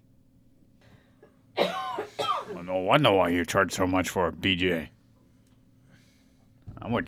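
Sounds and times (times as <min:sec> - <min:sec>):
woman coughing: 0:01.6 - 0:02.7
speech: 0:02.7 - 0:05.0, 0:06.9 - 0:07.0.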